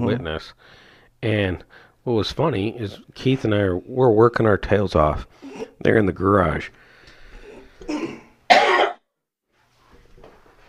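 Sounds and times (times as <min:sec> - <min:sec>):
speech: 0:00.0 - 0:06.8, 0:07.8 - 0:08.2
person coughing: 0:05.4 - 0:05.8, 0:07.8 - 0:09.0.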